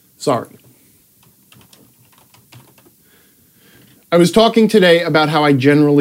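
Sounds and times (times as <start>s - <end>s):
speech: 0.2s - 0.6s, 4.1s - 5.9s
typing on a computer keyboard: 1.2s - 3.0s.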